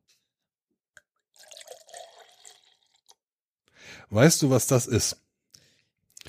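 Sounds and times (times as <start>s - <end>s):
cashew milk being poured: 1.3s - 3.2s
speech: 4.0s - 5.2s.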